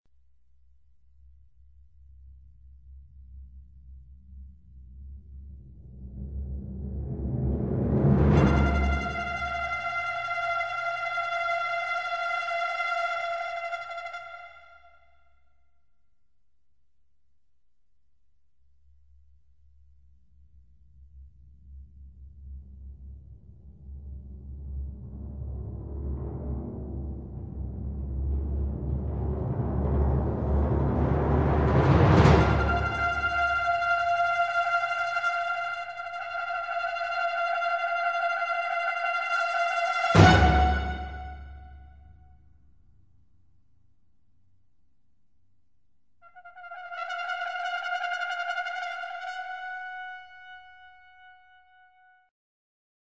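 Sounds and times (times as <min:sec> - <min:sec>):
brass instrument: 0:07.0 - 0:15.1, 0:25.1 - 0:42.0, 0:46.2 - 0:52.3.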